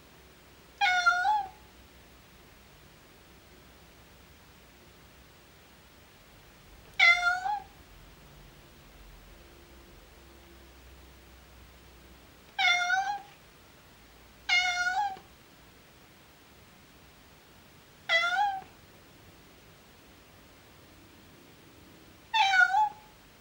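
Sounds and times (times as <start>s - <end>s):
faint low hum: 0.0s - 23.3s
domestic cat miaowing: 0.8s - 1.6s, 7.0s - 7.7s, 12.6s - 13.4s, 14.5s - 15.3s, 18.1s - 18.7s, 22.3s - 23.1s.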